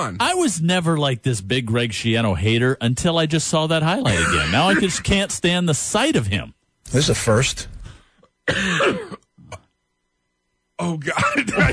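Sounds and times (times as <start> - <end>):
speech: 0.0 - 7.8, 8.5 - 9.1, 10.8 - 11.7
coughing: 4.0 - 5.2, 8.4 - 9.8, 11.0 - 11.7
throat-clearing cough: 4.1 - 5.0, 8.4 - 9.7, 11.1 - 11.7.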